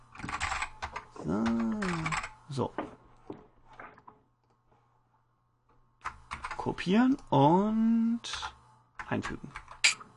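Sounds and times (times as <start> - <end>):
computer keyboard typing while filling in a table: 0.1 - 2.3, 6.0 - 7.3, 9.0 - 9.8
speech: 1.2 - 1.6, 2.6 - 2.9, 6.6 - 9.6
person making drawn-out voiced sound: 1.2 - 2.2.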